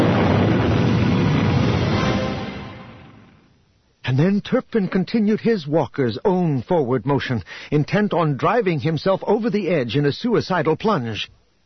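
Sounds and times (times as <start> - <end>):
massive explosion of a walker vehicle with debris and fire: 0.0 - 3.6
speech: 4.2 - 11.4.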